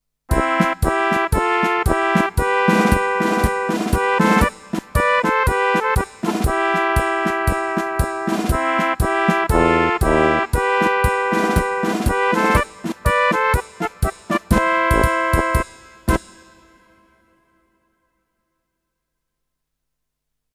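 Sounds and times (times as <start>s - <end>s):
drum: 0.3s - 16.3s
flugelhorn: 0.3s - 17.4s.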